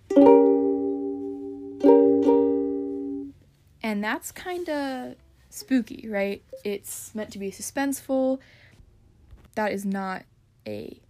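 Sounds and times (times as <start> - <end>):
C diminished chord struck on an instrument: 0.1 - 3.3
speech: 3.9 - 8.6, 9.6 - 11.0.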